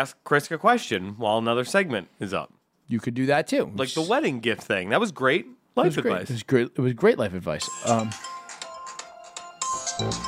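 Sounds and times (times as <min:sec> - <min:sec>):
speech: 0:00.0 - 0:08.4, 0:10.0 - 0:10.2
phone ringtone repeating electronic melody: 0:07.6 - 0:10.2.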